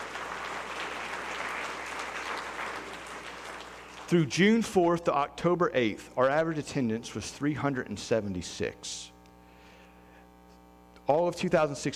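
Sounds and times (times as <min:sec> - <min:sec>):
room full of people applauding: 0:00.0 - 0:04.3
speech: 0:04.1 - 0:09.1, 0:11.1 - 0:11.9.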